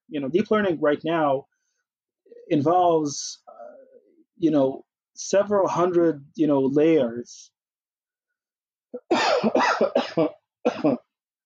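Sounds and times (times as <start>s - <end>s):
speech: 0.1s - 1.5s, 2.5s - 3.8s, 4.4s - 7.6s, 8.9s - 11.1s
person coughing harshly: 9.0s - 11.2s.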